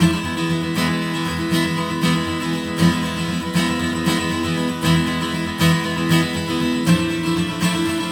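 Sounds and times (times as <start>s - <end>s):
guitar: 0.0s - 8.1s.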